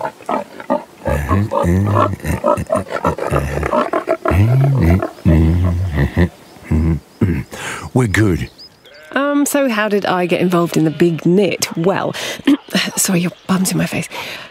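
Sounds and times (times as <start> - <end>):
pigs grunting and squealing: 0.0 - 7.4
speech: 1.3 - 5.1, 8.0 - 8.6, 9.5 - 14.4.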